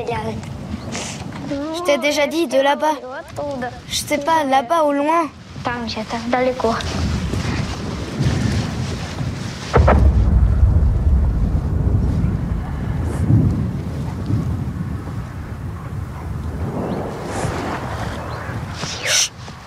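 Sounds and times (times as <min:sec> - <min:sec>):
steady windy rumble: 0:00.0 - 0:02.4, 0:05.0 - 0:19.6
speech: 0:00.0 - 0:07.1
distant gunfire from the opposite riverbank: 0:09.8 - 0:12.8.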